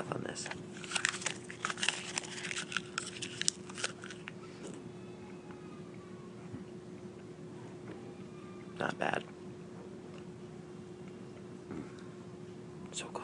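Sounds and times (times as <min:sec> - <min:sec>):
quiet hum: 0:00.0 - 0:13.2
person chewing on little strips of paper: 0:00.8 - 0:04.3
speech: 0:08.8 - 0:09.3.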